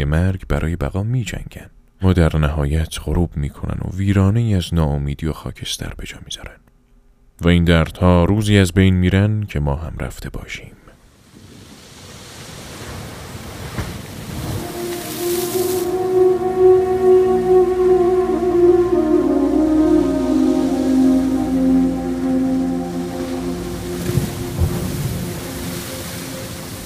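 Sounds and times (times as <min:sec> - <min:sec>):
speech: 0:00.0 - 0:06.6, 0:07.4 - 0:10.8
stormy sea waves: 0:11.2 - 0:26.8
low sustained tonal drone: 0:14.4 - 0:26.8.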